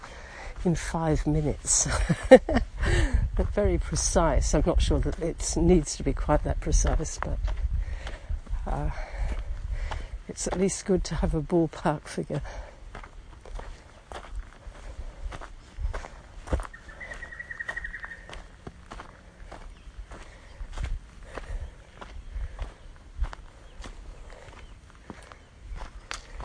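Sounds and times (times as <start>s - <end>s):
footsteps crunching along the ground: 0.0s - 26.4s
speech: 0.6s - 7.5s, 8.7s - 9.1s, 10.3s - 12.7s
small birds peeping in the distance: 13.4s - 26.4s
brief high bird trill: 16.7s - 18.5s.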